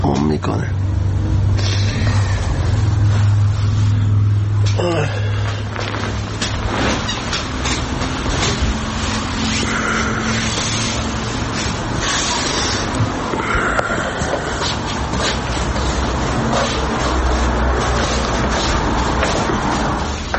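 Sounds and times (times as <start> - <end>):
deep car engine hum: 0.0 - 20.3
road noise inside a moving car: 0.0 - 20.3
rumbling car tires: 0.0 - 20.3
speech: 0.4 - 1.4, 4.8 - 5.2.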